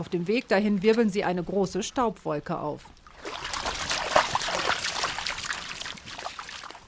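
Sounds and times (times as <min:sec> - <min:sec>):
speech: 0:00.0 - 0:03.5
shallow river water trickling and babbling: 0:02.9 - 0:06.8.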